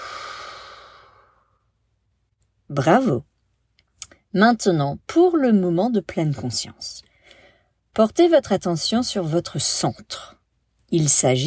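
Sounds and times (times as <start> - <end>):
slow exhale during a breathing exercise: 0.0 - 1.6
speech: 2.7 - 3.3, 4.3 - 7.1, 8.0 - 11.4.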